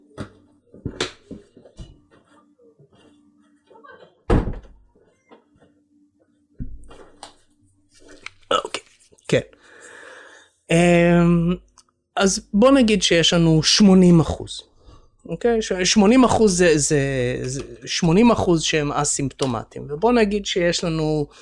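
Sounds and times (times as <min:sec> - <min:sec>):
door shutting in a house: 0:04.0 - 0:04.8
speech: 0:09.3 - 0:09.6, 0:10.7 - 0:11.6, 0:12.2 - 0:14.7, 0:15.3 - 0:21.4.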